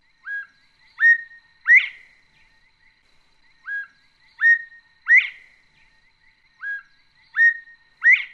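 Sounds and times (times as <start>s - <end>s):
Northern Bobwhite whistled call played back from a bird song book: 0.2s - 2.2s, 3.6s - 5.6s, 6.6s - 8.3s.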